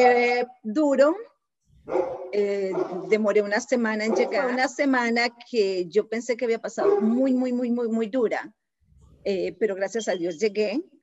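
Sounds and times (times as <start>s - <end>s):
speech: 0.0s - 8.6s, 9.2s - 11.0s
dog barking: 1.9s - 3.2s, 4.0s - 4.6s, 6.8s - 7.2s.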